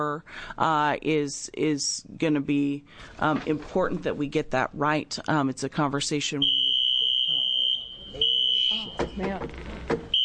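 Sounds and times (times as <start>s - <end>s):
speech: 0.0s - 6.6s, 8.1s - 10.0s
fire alarm tone: 6.4s - 9.2s.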